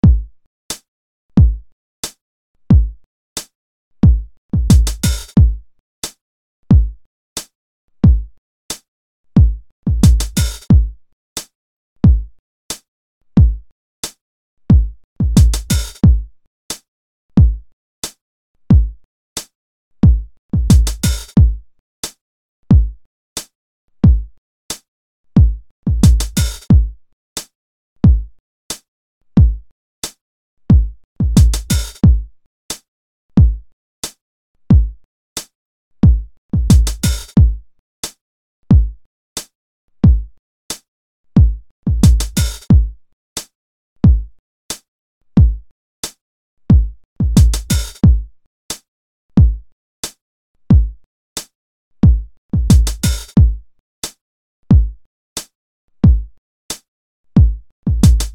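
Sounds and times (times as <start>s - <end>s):
simple beat kick drum: 0.0s - 0.3s, 1.4s - 1.7s, 2.7s - 3.0s, 4.0s - 5.6s, 6.7s - 7.0s, 8.0s - 8.3s, 9.4s - 11.0s, 12.0s - 12.3s, 13.4s - 13.6s, 14.7s - 16.3s, 17.4s - 17.6s, 18.7s - 19.0s, 20.0s - 21.6s, 22.7s - 23.0s, 24.0s - 24.3s, 25.4s - 27.0s, 28.0s - 28.3s, 29.4s - 29.6s, 30.7s - 32.3s, 33.4s - 33.6s, 34.7s - 35.0s, 36.0s - 37.6s, 38.7s - 39.0s, 40.0s - 40.3s, 41.4s - 43.0s, 44.0s - 44.3s, 45.4s - 45.6s, 46.7s - 48.3s, 49.4s - 49.6s, 50.7s - 51.0s, 52.0s - 53.6s, 54.7s - 55.0s, 56.0s - 56.3s, 57.4s - 58.3s
simple beat hi-hat: 4.7s - 5.3s, 15.4s - 16.0s, 20.7s - 21.3s, 31.4s - 32.0s, 36.7s - 37.3s, 42.1s - 42.6s, 47.4s - 48.0s, 52.7s - 53.4s, 58.0s - 58.3s.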